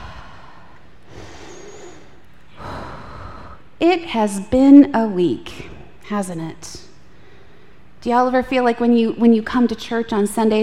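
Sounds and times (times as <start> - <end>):
deep breath taken during a church service: 0.0 - 3.7, 7.1 - 8.0
speech: 3.8 - 6.9, 8.0 - 10.6.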